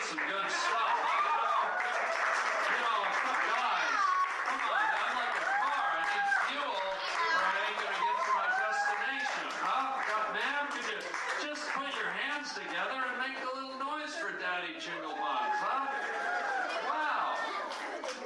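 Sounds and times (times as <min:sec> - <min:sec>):
comedy club audience whooping: 0:00.0 - 0:10.2, 0:15.0 - 0:17.7
comedy club audience applause: 0:00.0 - 0:13.8, 0:15.0 - 0:18.2
laughter: 0:00.0 - 0:18.2
overlapping voices: 0:00.0 - 0:18.2.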